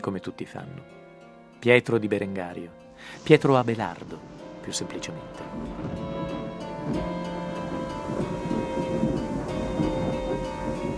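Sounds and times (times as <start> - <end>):
speech: 0.0 - 1.0, 1.6 - 6.0, 6.8 - 7.2
faint hiss: 1.8 - 10.9
thunder from a lightning strike rumbling: 3.1 - 10.9.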